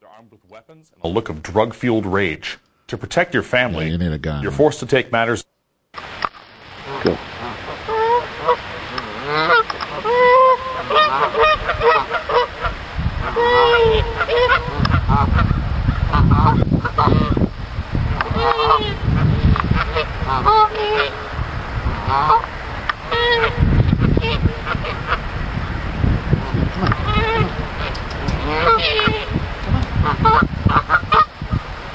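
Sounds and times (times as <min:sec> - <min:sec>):
speech: 0:00.2 - 0:05.5, 0:07.0 - 0:12.2, 0:13.4 - 0:15.6, 0:20.0 - 0:21.2, 0:22.1 - 0:22.6, 0:28.5 - 0:29.4, 0:30.0 - 0:31.0
flock of geese honking: 0:06.8 - 0:17.4, 0:18.2 - 0:25.8, 0:26.4 - 0:29.4, 0:30.0 - 0:31.6
rough rumbling background: 0:12.7 - 0:31.9.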